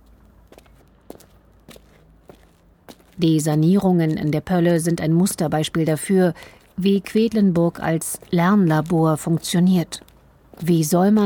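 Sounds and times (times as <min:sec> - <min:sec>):
footsteps walking along a street: 0:00.0 - 0:11.2
low hum: 0:00.0 - 0:11.2
speech: 0:03.2 - 0:10.0, 0:10.6 - 0:11.2.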